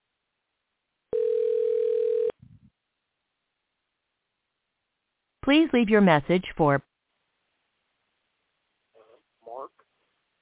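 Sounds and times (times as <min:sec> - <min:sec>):
phone ringing tone while placing a phone call: 0:01.1 - 0:02.4
speech: 0:05.5 - 0:06.9.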